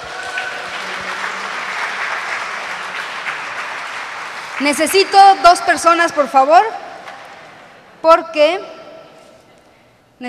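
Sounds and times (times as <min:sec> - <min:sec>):
audience applause: 0:00.0 - 0:05.6
speech: 0:04.6 - 0:06.8, 0:08.0 - 0:08.7.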